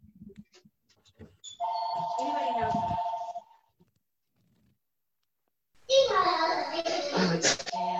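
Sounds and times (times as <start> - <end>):
phone ringing with a loud steady electronic tone: 1.6 - 3.7
people talking: 2.0 - 3.1, 5.9 - 7.9.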